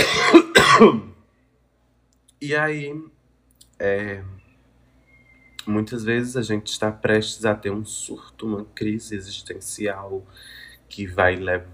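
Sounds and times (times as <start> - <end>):
harsh coughs: 0.0 - 1.2
speech: 0.8 - 1.1, 2.4 - 3.2, 3.8 - 4.4, 5.6 - 11.7.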